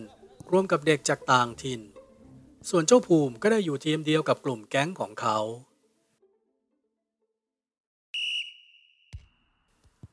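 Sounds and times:
speech: 0.0 - 1.9, 2.6 - 5.7
referee whistle blast signalling the start of a football match: 8.2 - 9.3.

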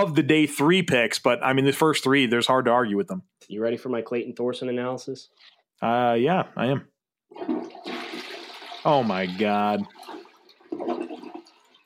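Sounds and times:
speech: 0.0 - 8.0, 8.8 - 11.0
toilet flushing: 7.3 - 11.8.

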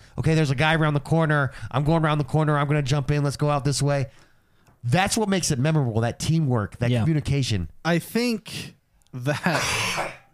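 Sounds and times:
speech: 0.2 - 4.2, 4.8 - 10.2
loud rough throaty cough: 9.4 - 10.3.

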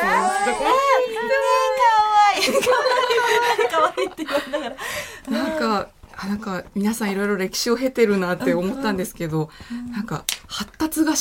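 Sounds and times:
baby fussing and crying: 0.0 - 1.3
laughter: 0.0 - 5.6
speech: 3.9 - 11.1.

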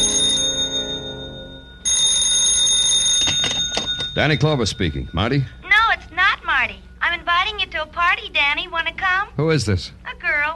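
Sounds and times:
telephone bell ringing: 0.0 - 5.9
speech: 4.2 - 5.6, 7.5 - 10.5.

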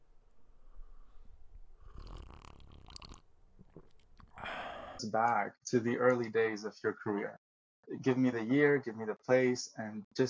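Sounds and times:
someone slurping a hot drink from a mug: 1.7 - 5.0
speech: 5.0 - 10.2.

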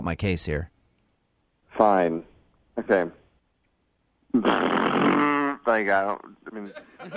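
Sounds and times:
speech: 0.0 - 0.7, 1.8 - 3.2, 4.4 - 7.1
person imitating a motorcycle engine: 4.4 - 5.7
laughter: 6.4 - 7.1.

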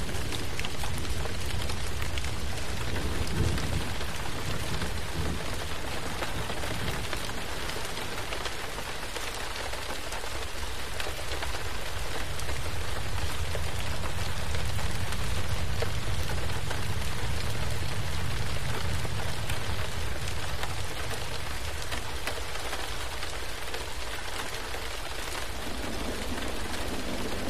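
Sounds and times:
steady dense rain pattering against a window: 0.0 - 27.4.

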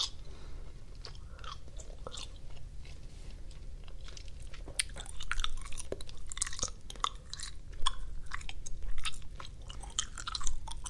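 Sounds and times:
wet gum chewing with sticky mouth sounds: 0.0 - 0.2, 0.9 - 10.8
low steady rumble: 0.0 - 10.8.

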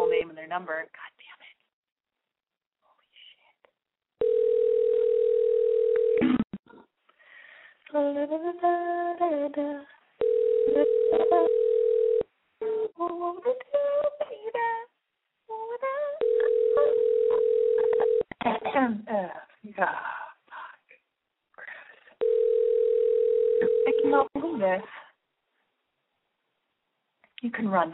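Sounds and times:
speech: 0.5 - 1.4, 7.9 - 11.7, 12.6 - 14.9, 18.4 - 20.2, 24.0 - 25.0, 27.4 - 27.9
outgoing phone call ringback tone: 4.2 - 6.2, 10.2 - 12.2, 16.2 - 18.3, 22.2 - 24.3.

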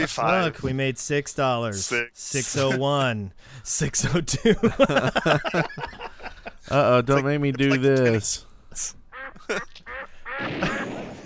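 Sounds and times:
laughter: 0.0 - 0.5, 4.0 - 11.2
speech: 0.0 - 10.9
duck quack sound effect: 8.8 - 10.9.

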